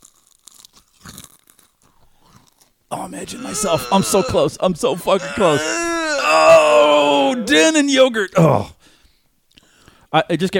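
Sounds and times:
crunchy chewing of Cheez-It crackers into a microphone: 0.0 - 4.1
speech: 3.0 - 8.8, 10.1 - 10.5.

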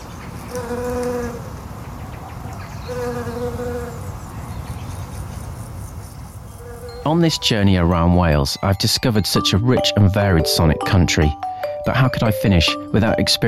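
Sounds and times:
bee buzzing past with a high-pitched whine: 0.4 - 1.6, 2.8 - 4.1, 6.5 - 7.1
speech: 7.1 - 13.4.

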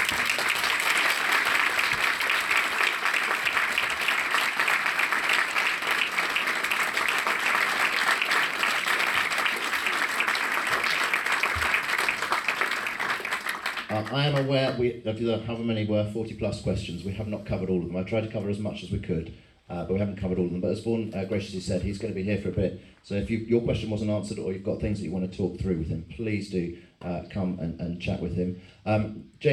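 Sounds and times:
audience applause: 0.0 - 14.5
speech: 14.1 - 29.5.

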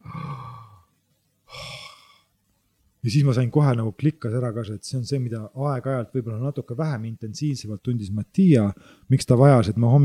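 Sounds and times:
slow deep breaths in a breathing exercise for an anxiety attack: 0.0 - 0.9, 1.5 - 2.3, 8.8 - 9.1
speech: 3.0 - 10.0.

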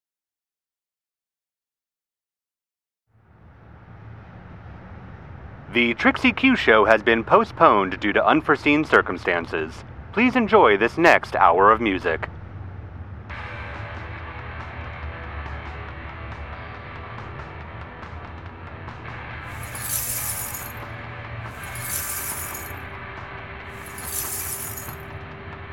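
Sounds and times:
speech: 5.7 - 12.4
glass shattering: 19.5 - 20.8, 21.5 - 22.8, 23.8 - 25.0.

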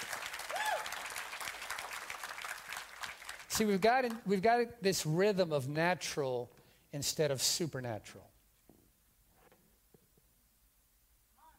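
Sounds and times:
audience applauding: 0.0 - 4.3
rising whoop or whistle: 0.5 - 1.0
speech: 3.6 - 8.3.

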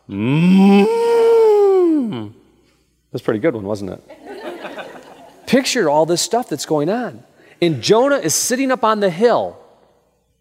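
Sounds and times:
person imitating a cow mooing: 0.0 - 2.3
speech: 0.1 - 0.8, 3.1 - 4.3, 5.5 - 9.6
laughter: 4.1 - 5.5.

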